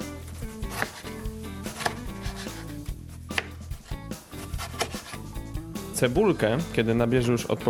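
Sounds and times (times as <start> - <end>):
soft music: 0.0 - 7.6
knife chopping cucumber and tomato on a cutting board: 0.5 - 5.2
speech: 6.0 - 7.6.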